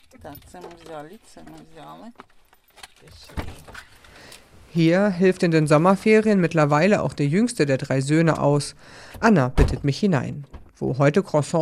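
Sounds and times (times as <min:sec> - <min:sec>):
keys jingling: 0:00.0 - 0:04.5
rustling movement of someone getting out of a car: 0:00.0 - 0:06.9
speech: 0:00.1 - 0:02.4, 0:03.0 - 0:04.0, 0:04.7 - 0:11.6.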